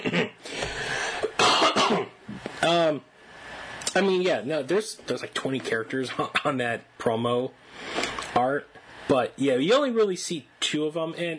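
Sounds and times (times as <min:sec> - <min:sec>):
person clearing throat in rough raspy bursts: 0:00.0 - 0:00.4, 0:01.2 - 0:02.2
speech: 0:02.6 - 0:03.1, 0:04.0 - 0:11.3.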